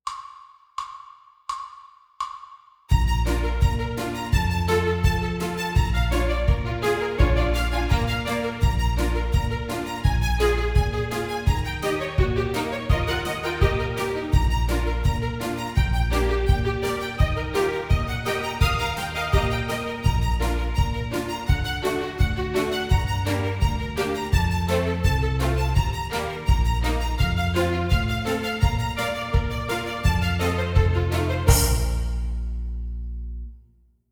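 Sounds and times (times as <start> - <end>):
low musical intervals: 2.9 - 33.6.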